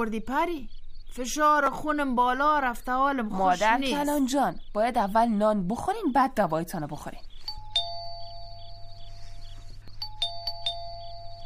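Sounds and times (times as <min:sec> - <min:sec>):
speech: 0:00.0 - 0:07.3
low steady hum: 0:00.0 - 0:11.4
electronic doorbell chime ringing at night: 0:07.5 - 0:11.4.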